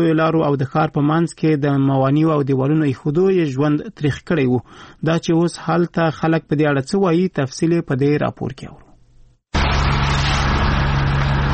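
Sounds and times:
speech: 0:00.0 - 0:08.8
municipal vehicle engine running while workers clear road barriers in Tarinkot: 0:09.6 - 0:11.5.

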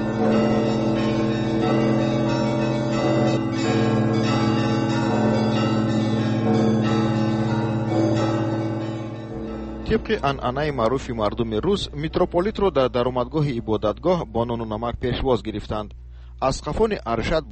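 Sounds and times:
bells of the Church of Christ the Saviour pealing: 0:00.0 - 0:13.6
speech: 0:09.9 - 0:17.5.

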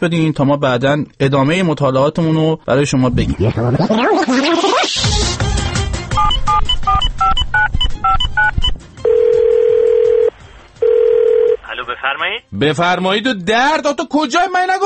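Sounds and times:
speech: 0:00.0 - 0:05.4, 0:12.0 - 0:14.8
touch-tone telephone dialing beeps: 0:06.2 - 0:11.6.

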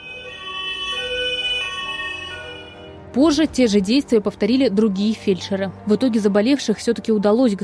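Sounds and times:
ambulance siren wailing at the regional Ministry of Health building in Omsk Russia: 0:00.0 - 0:03.2
speech: 0:03.1 - 0:07.6.

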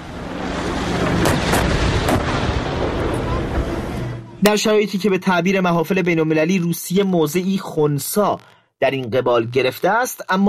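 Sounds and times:
heavy artillery fire rumbling: 0:00.0 - 0:04.3
sharp blasts: 0:00.0 - 0:04.5
dense continuous roar of noise: 0:00.0 - 0:04.6
speech: 0:04.4 - 0:10.4.

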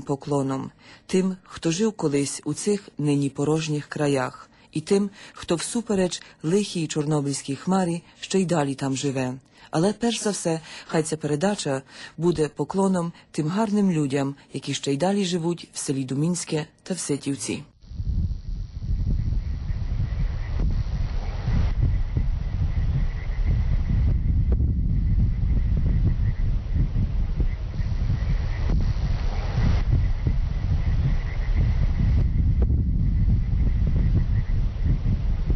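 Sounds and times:
speech: 0:00.0 - 0:18.2
chorus of frogs croaking: 0:17.8 - 0:35.5
wind blowing across an empty village: 0:17.8 - 0:35.5.

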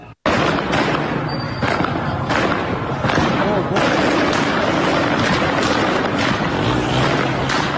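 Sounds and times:
loud dense crowd noise at a street protest: 0:00.0 - 0:07.7
gunshots at a street protest: 0:00.2 - 0:07.7.

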